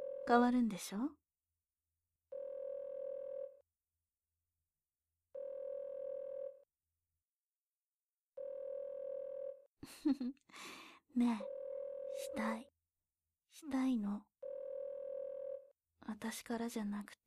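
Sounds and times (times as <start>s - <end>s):
ringback tone of an outgoing phone call: 0.0s - 0.4s, 2.3s - 3.6s, 5.4s - 6.6s, 8.4s - 9.7s, 11.4s - 12.6s, 14.4s - 15.7s
speech: 0.3s - 1.2s, 9.8s - 11.6s, 12.3s - 12.7s, 13.5s - 14.3s, 16.0s - 17.2s.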